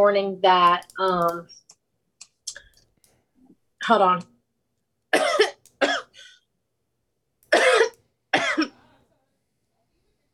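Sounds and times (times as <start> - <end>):
speech: 0.0 - 1.6, 3.8 - 4.3
person coughing from a popcorn kernel stuck in the throat: 5.2 - 6.4, 7.5 - 8.8.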